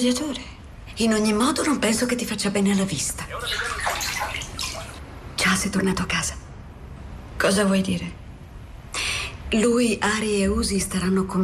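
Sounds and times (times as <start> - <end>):
speech: 0.0 - 4.1, 5.5 - 6.4, 7.4 - 8.2, 9.5 - 11.4
water sloshing and swirling in a full bathtub: 3.2 - 5.0.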